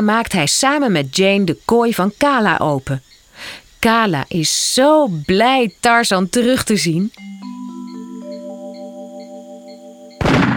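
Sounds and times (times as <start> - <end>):
speech: 0.0 - 7.4
sustained musical tones: 7.2 - 10.2
hunter's rifle shot: 10.2 - 10.5.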